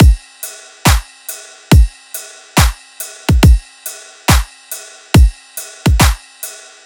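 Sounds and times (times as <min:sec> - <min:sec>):
riddim drum loop: 0:00.0 - 0:00.2, 0:01.7 - 0:01.9, 0:02.6 - 0:03.6, 0:04.3 - 0:04.5, 0:05.2 - 0:06.2.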